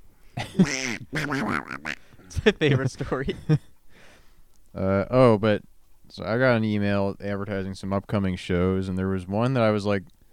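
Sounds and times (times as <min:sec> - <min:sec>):
person imitating a cartoon duck voice with quacking-style gibberish: 0:00.6 - 0:02.0
speech: 0:00.6 - 0:03.7, 0:04.8 - 0:10.2.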